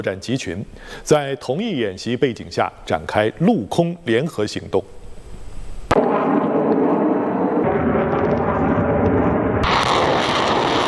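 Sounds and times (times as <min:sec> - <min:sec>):
speech: 0:00.0 - 0:05.0
loud blast of military fire in a joint military exercise: 0:05.9 - 0:10.8.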